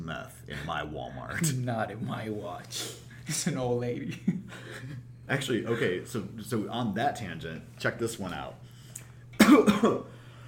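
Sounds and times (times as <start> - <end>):
quiet hum: 0.0 - 10.4
speech: 0.1 - 8.7, 9.5 - 10.2
person coughing: 9.4 - 10.1.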